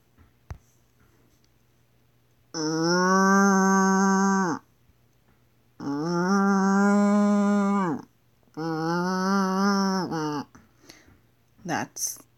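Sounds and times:
person imitating cow mooing: 2.5 - 4.6, 5.8 - 10.5.

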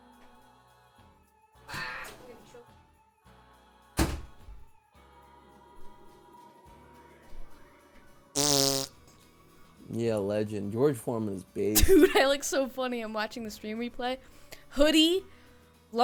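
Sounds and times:
loud fart-like blasts: 8.4 - 9.0
speech: 9.9 - 16.0
laughter: 11.8 - 12.5.

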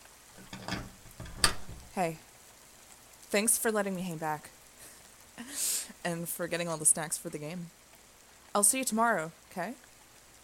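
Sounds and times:
soft steady rain pattering outside: 0.0 - 10.4
speech: 2.0 - 2.3, 3.3 - 4.6, 5.4 - 7.8, 8.5 - 9.9.

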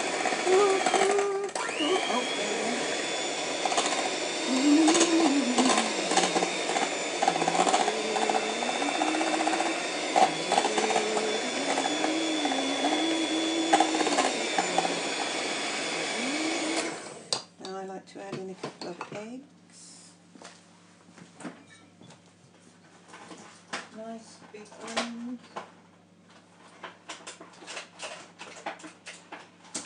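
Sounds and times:
electric mixer mixing batter and crushing banana: 0.0 - 17.5
person talking: 0.4 - 3.1, 4.4 - 15.3, 15.9 - 16.8.

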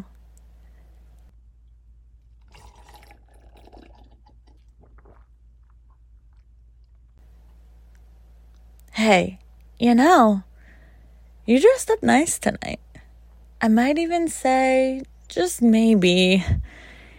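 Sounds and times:
wine pouring into a glass: 2.5 - 5.4
speech: 9.0 - 10.5, 11.5 - 12.8, 13.6 - 16.8.

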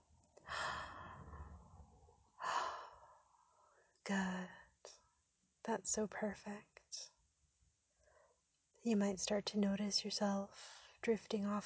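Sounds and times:
slow deep breathing during a relaxation session: 0.4 - 3.9
speech: 4.1 - 5.0, 5.7 - 7.1, 8.8 - 11.6.

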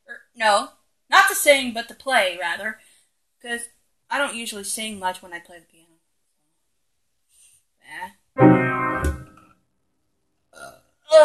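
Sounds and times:
speech: 0.4 - 2.8, 3.4 - 5.8
breathing: 2.8 - 3.2, 7.3 - 7.7
person burping: 10.6 - 10.8.

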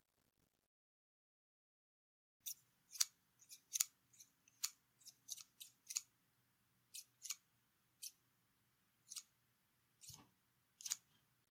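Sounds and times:
scissors cutting fabric: 2.4 - 6.1, 6.9 - 7.4, 9.1 - 9.3, 10.0 - 11.2.

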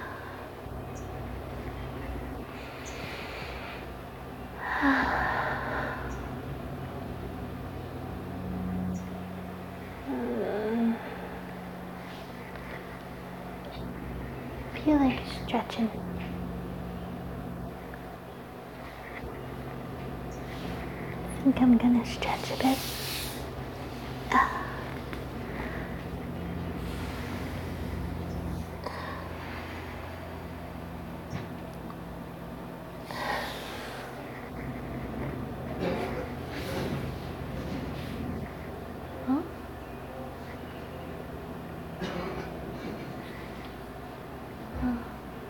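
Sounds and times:
steady low hum: 0.0 - 45.4
speech: 14.9 - 16.2, 21.5 - 23.0
faint coughing from a person outdoors: 35.8 - 36.3, 42.0 - 42.6.

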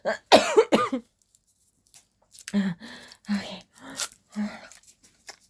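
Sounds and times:
person coughing fit: 0.1 - 1.0
strained gasps: 2.5 - 4.9.

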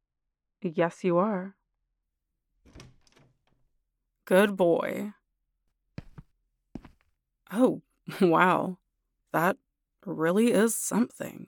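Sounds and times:
speech: 0.6 - 1.6, 4.3 - 5.2, 7.5 - 11.4
door opening with latch clunk and rattle: 2.7 - 3.6.

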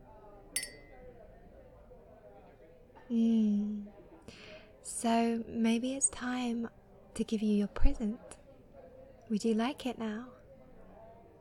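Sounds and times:
low murmur of room noise: 0.0 - 11.3
drinking glasses clinking in a birthday toast at a restaurant: 0.6 - 1.1
speech: 3.1 - 3.4, 5.0 - 8.4, 9.3 - 10.4.

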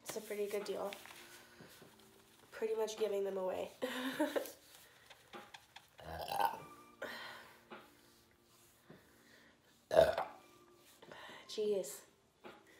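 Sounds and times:
speech: 0.2 - 1.2, 2.6 - 4.6, 11.6 - 12.1
person burping: 6.0 - 6.7, 9.9 - 10.4.

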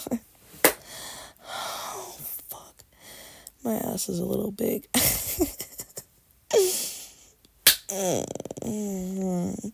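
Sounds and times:
speech: 0.0 - 0.3, 3.6 - 5.7, 7.9 - 9.7
hand slapping bare skin: 0.6 - 0.8, 7.6 - 7.9.

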